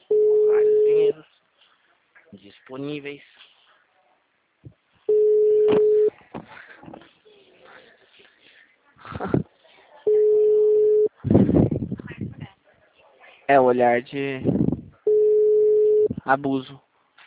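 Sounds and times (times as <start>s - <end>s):
ringback tone of an outgoing phone call: 0.0s - 1.1s, 5.1s - 6.1s, 10.1s - 11.1s, 15.1s - 16.1s
speech: 2.7s - 3.4s, 13.5s - 14.6s, 16.2s - 16.8s.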